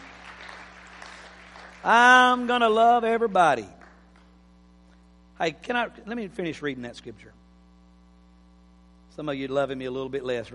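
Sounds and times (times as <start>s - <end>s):
audience clapping: 0.0s - 4.4s
speech: 1.8s - 3.8s, 5.4s - 7.4s, 9.2s - 10.5s.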